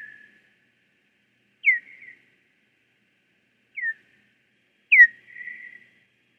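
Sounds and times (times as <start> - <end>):
Hawaiian hoary bat call chirps: 1.6 - 2.1, 4.9 - 5.8.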